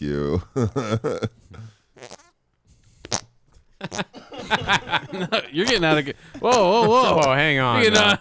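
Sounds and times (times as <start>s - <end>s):
speech: 0.0s - 1.7s, 5.2s - 8.2s
wet sputtering farts: 2.0s - 2.4s, 3.0s - 3.3s, 3.9s - 4.9s, 5.6s - 5.9s, 6.5s - 8.2s
laughter: 3.9s - 7.2s.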